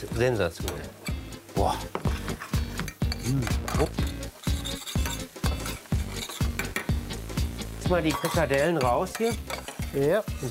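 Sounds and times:
speech: 0.0 - 1.0, 1.6 - 2.0, 3.3 - 4.2, 7.9 - 10.4
porcini mushrooms frying in a pan: 0.0 - 10.4
utensil stirring and scraping porcini mushrooms in a pan: 2.0 - 6.9, 8.0 - 10.4.

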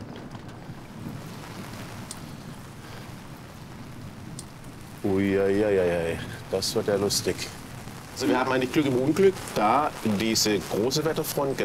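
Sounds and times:
low rumble of wind: 0.0 - 11.6
steady rain falling: 0.0 - 11.6
speech: 5.0 - 7.6, 8.2 - 11.6.

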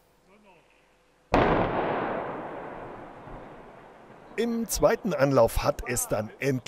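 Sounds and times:
explosive demolition blast of a highway viaduct section: 1.4 - 3.9
speech: 4.4 - 6.6.

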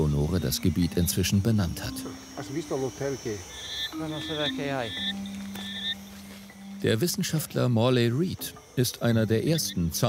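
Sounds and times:
frogs croaking after dark in a forest: 0.0 - 10.0
speech: 0.2 - 5.5, 6.8 - 10.0
high whistle-like chirps of frogs in a forest: 1.8 - 6.1.

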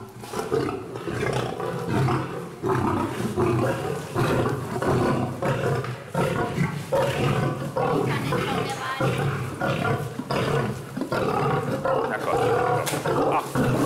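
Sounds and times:
lion and tiger roaring and growling around feeding: 0.0 - 13.8.

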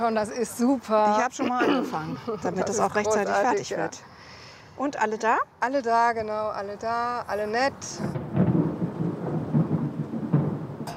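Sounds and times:
speech: 0.0 - 4.1, 4.8 - 8.2
steady wash of rain-like noise: 0.0 - 10.9
low rolling thunder: 7.7 - 10.9.

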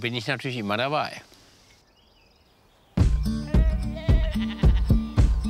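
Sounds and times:
speech: 0.0 - 1.3
Toggenburg goats kept for milk bleating: 3.3 - 5.3.

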